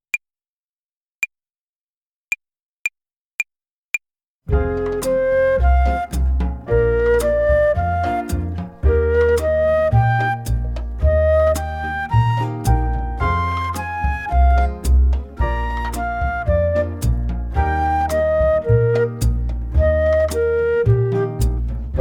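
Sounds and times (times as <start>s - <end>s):
slow jazz play-along backing music: 4.5s - 21.9s
flute playing chord arpeggio exercise over slow jazz play-along: 4.7s - 21.9s.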